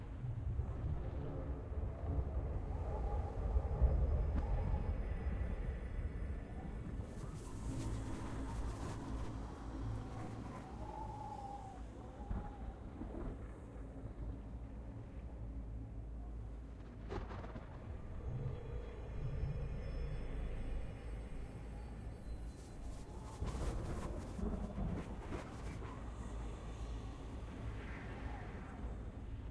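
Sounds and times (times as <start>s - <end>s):
ambience on a plateau: 0.0s - 29.5s.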